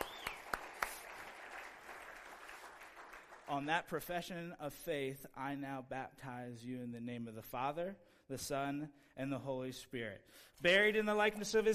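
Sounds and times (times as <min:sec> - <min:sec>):
sharp hand claps: 0:00.0 - 0:03.5
speech: 0:03.5 - 0:11.7.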